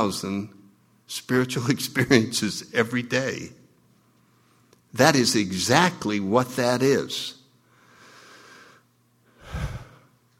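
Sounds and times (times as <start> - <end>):
speech: 0.0 - 3.6, 4.9 - 7.4
slow deep breath drawn in: 7.7 - 10.1
strong loud exhale: 9.4 - 10.1.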